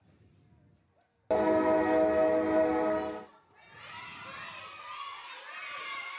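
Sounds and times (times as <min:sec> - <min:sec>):
loud sustained train horn blast: 0:01.3 - 0:03.3
crowd noise: 0:01.3 - 0:06.1.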